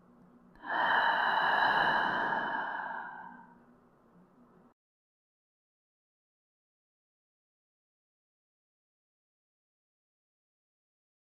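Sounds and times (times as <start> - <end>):
deep breath in and slow exhale during guided yoga nidra relaxation practice: 0.6 - 3.5.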